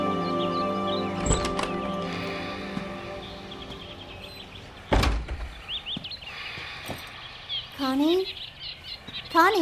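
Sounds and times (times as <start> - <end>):
small pet birds chirping and whistling: 0.1 - 9.6
heavy door-like thuds: 4.8 - 6.1.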